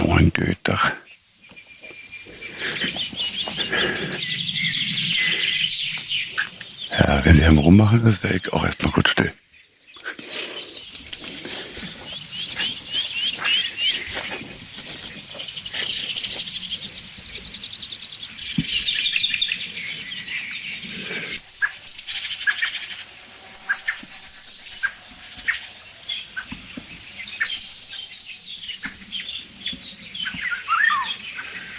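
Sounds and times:
Eurasian blackbird soft low tuck calls: 0.0 - 9.0, 10.0 - 21.8, 28.7 - 31.7
outdoor chorus of high bird chirps and twitters: 0.0 - 31.7
speech: 0.2 - 1.0, 7.0 - 9.4.

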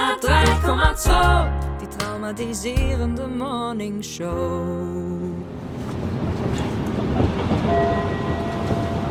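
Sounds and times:
speech: 0.2 - 5.6
U-Bahn subway train running on rails at Hallisches Tor: 5.7 - 9.0.

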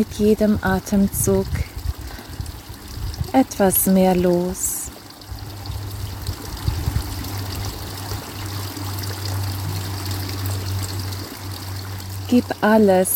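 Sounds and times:
speech: 0.0 - 1.7, 3.3 - 4.7, 12.3 - 13.1
brook trickling and burbling: 0.0 - 13.1
low hum: 0.0 - 13.1.

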